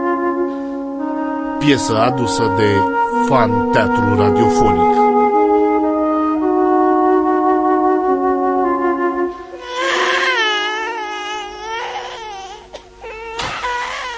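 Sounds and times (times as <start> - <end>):
steady sustained tones: 0.2 - 12.1
speech: 1.7 - 5.0
newborn baby girl crying: 9.5 - 14.1.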